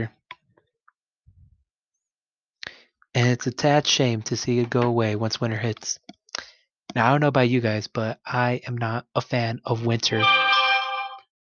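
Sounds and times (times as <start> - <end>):
speech: 3.2 - 6.1, 6.9 - 10.4
bright electronic chime: 10.2 - 11.2.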